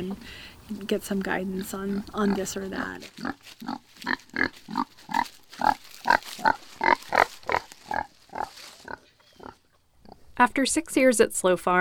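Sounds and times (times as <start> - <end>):
speech: 0.0 - 7.2, 10.4 - 11.7
piglets grunting and oinking: 1.2 - 10.3.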